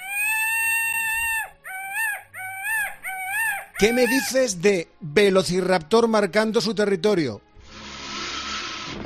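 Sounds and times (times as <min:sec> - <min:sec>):
peacock call with long sustained wail and rising-and-falling cries: 0:00.0 - 0:04.5
speech: 0:03.8 - 0:07.5.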